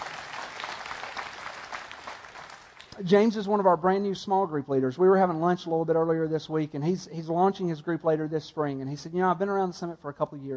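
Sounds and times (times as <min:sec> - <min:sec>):
church congregation clapping in sustained applause: 0:00.0 - 0:03.0
speech: 0:03.0 - 0:10.5.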